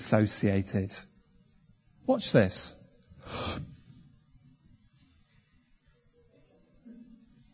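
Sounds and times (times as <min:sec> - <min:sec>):
faint low hum: 0:00.0 - 0:07.5
speech: 0:00.1 - 0:01.1, 0:02.1 - 0:03.7
speaker breathing out sharply into the microphone: 0:03.2 - 0:03.8.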